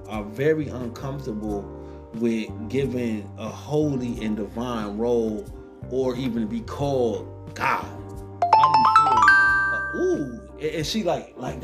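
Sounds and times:
speech: 0:00.0 - 0:08.0, 0:10.2 - 0:11.6
doorbell-like chime: 0:08.4 - 0:10.4.

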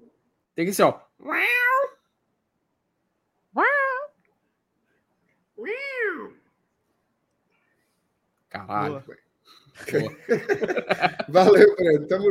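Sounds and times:
speech: 0:00.6 - 0:01.9, 0:08.6 - 0:09.2, 0:09.8 - 0:12.2
cat meowing: 0:01.2 - 0:02.0, 0:03.6 - 0:04.2, 0:05.6 - 0:06.5
laughter: 0:09.8 - 0:12.2.

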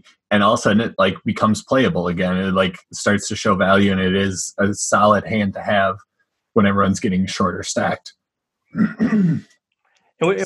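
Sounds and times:
speech: 0:00.0 - 0:09.5, 0:10.2 - 0:10.4
person coughing: 0:08.8 - 0:09.5
throat clearing: 0:08.8 - 0:09.5.

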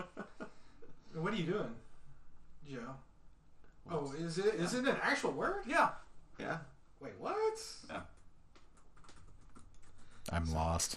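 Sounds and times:
speech: 0:01.2 - 0:01.8, 0:02.6 - 0:03.1, 0:03.9 - 0:08.1, 0:10.3 - 0:10.9
rapid typing on a computer keyboard: 0:08.1 - 0:10.9.

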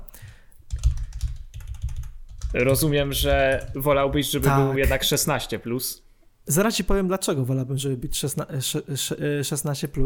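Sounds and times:
rapid computer keyboard typing: 0:00.2 - 0:04.5
speech: 0:02.5 - 0:10.0.

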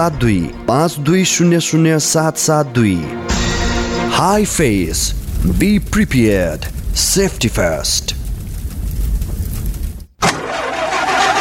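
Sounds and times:
speech: 0:00.0 - 0:03.5, 0:04.1 - 0:08.1
old broken-down car engine rumbling: 0:03.3 - 0:11.4.

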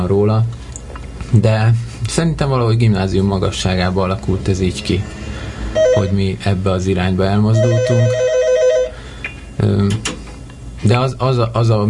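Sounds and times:
speech: 0:00.0 - 0:00.6, 0:01.3 - 0:05.3, 0:06.0 - 0:08.2, 0:09.6 - 0:10.2, 0:10.8 - 0:11.8
telephone ringing with a warbling electronic tone: 0:05.8 - 0:06.2, 0:07.5 - 0:09.0.

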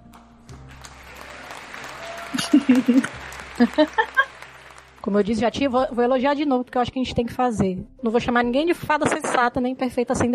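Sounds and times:
hosts clapping hands in brief scattered applause: 0:00.0 - 0:05.5
laughter: 0:01.1 - 0:04.7
speech: 0:02.3 - 0:04.1, 0:05.0 - 0:10.3.

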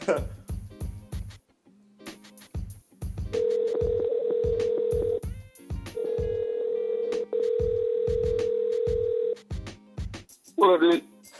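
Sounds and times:
speech: 0:00.1 - 0:00.4, 0:10.8 - 0:11.1
rhythmic low thumping beat: 0:00.3 - 0:01.3, 0:02.6 - 0:06.4, 0:07.4 - 0:10.3
outgoing phone call ringing tone: 0:03.4 - 0:05.2, 0:06.0 - 0:09.4.

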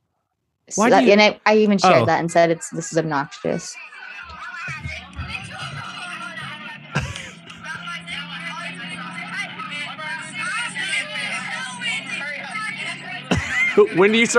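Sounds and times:
speech: 0:00.7 - 0:04.8, 0:13.8 - 0:14.3
bus passengers chattering: 0:00.7 - 0:14.3
bus engine rumble: 0:00.8 - 0:03.7, 0:04.3 - 0:14.3
laughter: 0:00.8 - 0:09.2, 0:12.9 - 0:14.3
bus rattling and road roar: 0:04.9 - 0:14.3.

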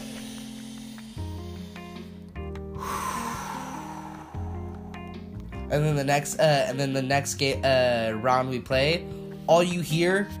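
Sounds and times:
deep breath drawn in by a video game player: 0:00.0 - 0:05.5
speech: 0:05.7 - 0:10.3.

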